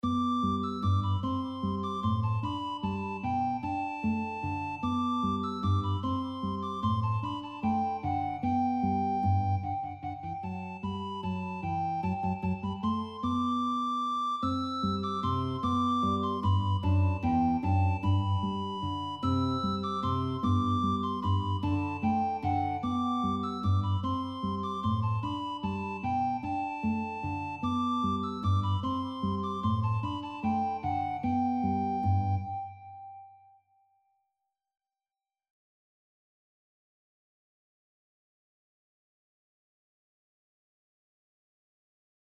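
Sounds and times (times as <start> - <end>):
guitar playing a duet piece: 0.0 - 33.6
soprano recorder playing a duet piece: 0.0 - 33.8.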